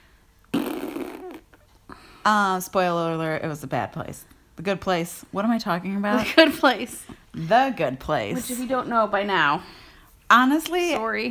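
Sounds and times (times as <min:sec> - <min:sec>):
loud drawn-out fart: 0:00.5 - 0:01.7
speech: 0:02.2 - 0:11.2.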